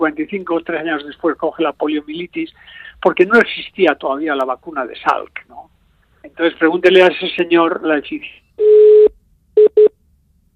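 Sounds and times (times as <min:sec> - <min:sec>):
speech: 0:00.0 - 0:08.9
telephone busy tone: 0:08.6 - 0:09.9.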